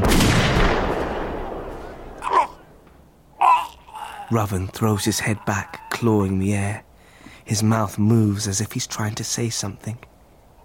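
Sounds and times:
rifle fire in a dramatized story: 0.0s - 2.2s
speech: 4.3s - 6.9s, 7.5s - 10.1s.

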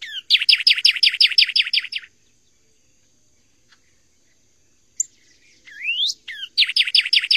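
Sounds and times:
northern cardinal whistled slurs and down-slurred whistles: 0.0s - 2.1s, 5.0s - 7.3s.

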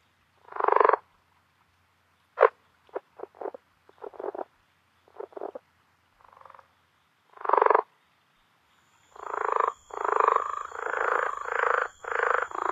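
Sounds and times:
faint steady high whine: 0.0s - 12.7s
Rio Grande Leopard Frog croaking calls in North America: 0.4s - 1.1s, 2.4s - 5.6s, 6.2s - 7.9s, 8.8s - 12.7s.

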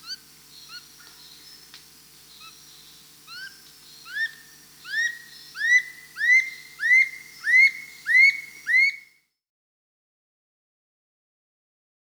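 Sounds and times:
Dull-capped attila whistling rising slurred notes in South America: 4.1s - 9.1s.

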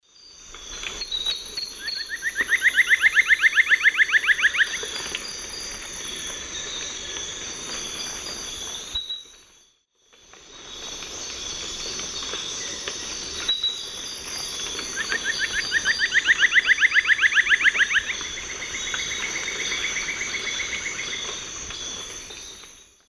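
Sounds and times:
two Dendrocolaptes picumnus birds singing in the Eastern Lowlands of South America: 1.2s - 5.1s, 14.6s - 21.5s.

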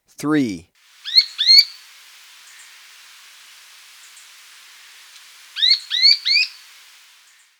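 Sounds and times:
speech: 0.2s - 0.7s
Rufous spinetail chirping in Ecuador: 0.8s - 7.5s.

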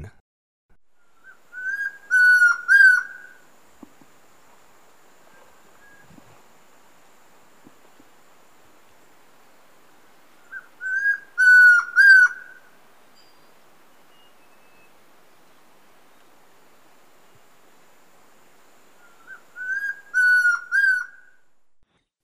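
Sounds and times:
Chestnut-crowned Antpitta calling in Ecuador: 1.0s - 4.1s, 10.3s - 16.3s, 18.8s - 21.4s.

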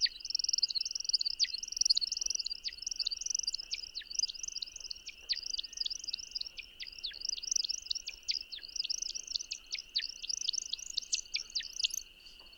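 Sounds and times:
American Woodcock flight song: 0.0s - 12.5s.

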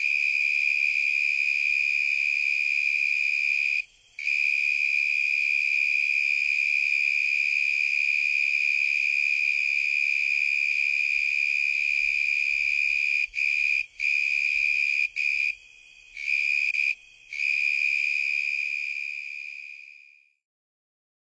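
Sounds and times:
Davis's tree cricket song trilling: 0.0s - 20.3s.

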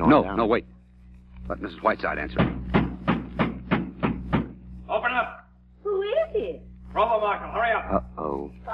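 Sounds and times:
speech: 0.1s - 0.8s, 1.5s - 2.7s, 6.4s - 8.7s
loud heavy knocking on a door: 2.3s - 4.6s.

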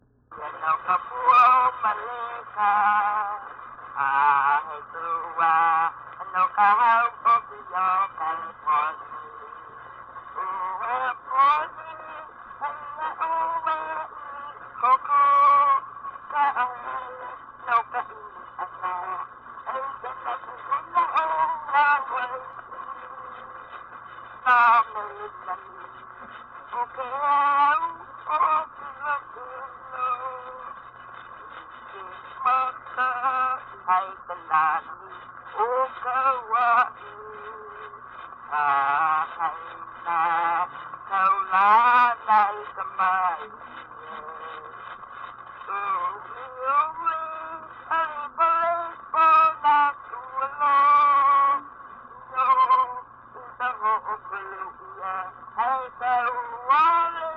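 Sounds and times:
name chant in Hawai'i: 0.4s - 57.3s.

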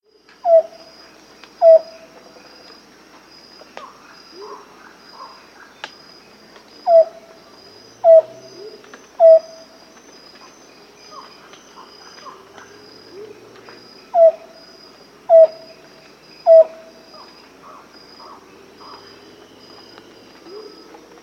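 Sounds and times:
Amazonian Antpitta calling in South America: 0.4s - 0.9s, 1.6s - 2.1s, 6.8s - 13.4s, 14.0s - 14.6s, 15.3s - 21.2s.

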